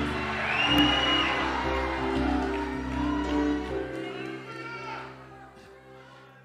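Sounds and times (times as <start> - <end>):
whoops from a crowd: 0.0 - 5.1
crowd shouting and cheering a shout of glory to God: 0.0 - 6.4.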